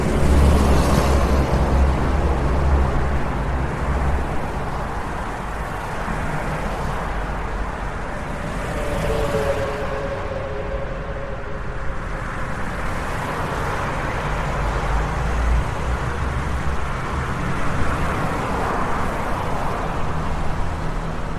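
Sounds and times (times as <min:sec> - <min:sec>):
continuous rumble of passing highway traffic: 0:00.0 - 0:21.3
brief tonal whine: 0:08.0 - 0:13.1.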